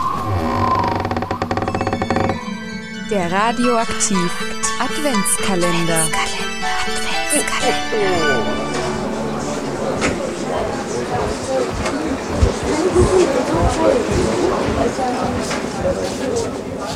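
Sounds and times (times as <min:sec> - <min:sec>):
brief ringing musical tone: 0:00.2 - 0:12.8
speech: 0:03.1 - 0:08.8, 0:12.9 - 0:16.9
murmur of a Christmas market crowd on a large square: 0:03.1 - 0:16.9.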